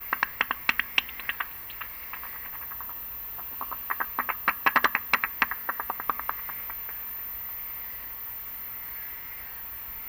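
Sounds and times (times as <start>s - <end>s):
bat clicks: 0.0s - 8.0s
steady faint hiss: 0.0s - 10.0s.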